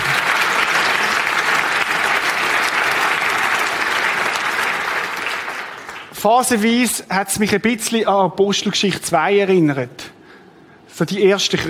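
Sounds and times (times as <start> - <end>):
audience applause with many hands clapping: 0.0 - 6.1
speech: 6.2 - 10.2, 11.0 - 11.6.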